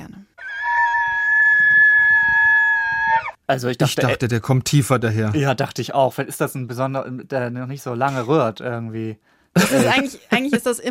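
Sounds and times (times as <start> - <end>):
moose call: 0.4 - 3.4
speech: 3.5 - 10.9.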